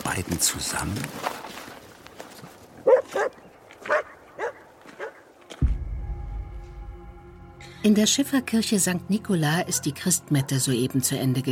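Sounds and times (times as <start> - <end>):
speech: 0.2 - 1.6, 7.8 - 11.5
shaggy dog barking on a frozen winter night: 2.8 - 5.2.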